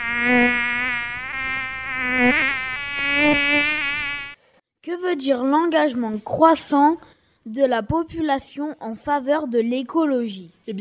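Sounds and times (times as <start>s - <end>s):
mosquito buzzing: 0.0s - 4.4s
speech: 5.1s - 10.7s.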